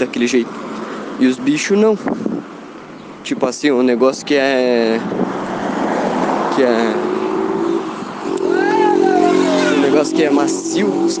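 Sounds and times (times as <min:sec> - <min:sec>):
speech: 0:00.0 - 0:02.5, 0:03.2 - 0:05.4, 0:06.6 - 0:07.1, 0:10.0 - 0:11.1
steady street noise: 0:00.0 - 0:11.1
motorcycle roaring past on a city street: 0:05.0 - 0:11.1.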